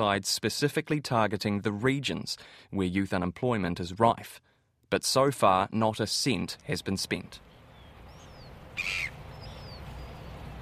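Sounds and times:
speech: 0.0 - 7.5, 8.8 - 9.1
steady low outdoor rumble: 6.4 - 10.6
flock of seagulls crying: 7.8 - 10.6
loud harsh gull squawk on the banks of the Porirua stream: 8.3 - 9.8.

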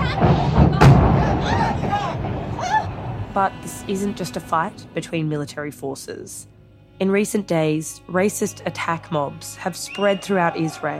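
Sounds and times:
heavy boom of a building destroyed by bombardment in Gaza City: 0.0 - 3.4
lingering low rumble of a building destroyed by bombardment: 0.0 - 5.4
speech: 3.4 - 10.9.

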